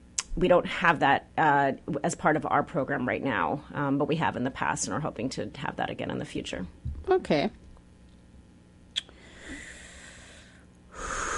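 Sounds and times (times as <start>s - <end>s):
speech: 0.4s - 7.6s
airy breathing into the mic: 9.1s - 11.3s.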